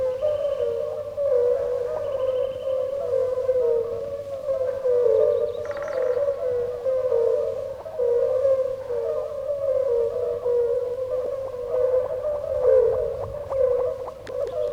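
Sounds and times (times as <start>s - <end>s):
chorus of European fire-bellied toads calling in pools after a flood: 0.0s - 14.7s.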